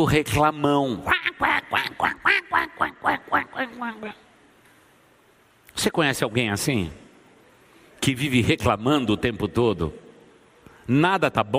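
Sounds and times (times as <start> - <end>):
speech: 0.0 - 2.2, 3.0 - 4.3, 5.8 - 7.0, 8.0 - 10.0, 10.9 - 11.5
voice imitating nasal raspy cartoon duck quacks: 1.0 - 4.2.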